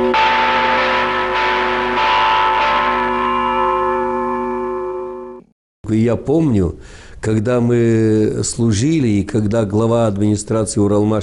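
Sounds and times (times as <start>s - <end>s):
largest church bell struck in an alarm toll: 0.0s - 5.5s
speech: 5.9s - 11.2s.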